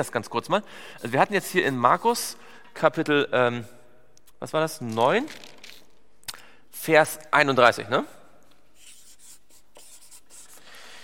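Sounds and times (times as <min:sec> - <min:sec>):
speech: 0:00.0 - 0:03.8, 0:04.4 - 0:05.6, 0:06.8 - 0:08.2
pen scratching across paper: 0:08.8 - 0:10.6.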